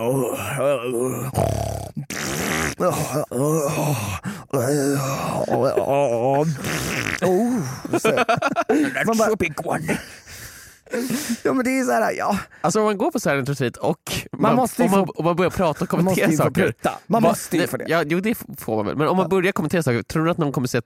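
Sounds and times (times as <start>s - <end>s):
speech: 0.0s - 1.7s, 2.8s - 10.3s, 10.9s - 20.8s
person imitating farts with wet raspberries and groaning tones: 1.2s - 4.0s, 6.4s - 7.6s
laughter: 5.0s - 6.6s, 7.2s - 9.6s.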